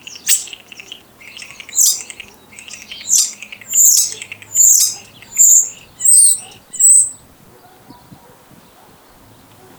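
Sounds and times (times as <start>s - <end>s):
common starling song: 0.0s - 7.2s.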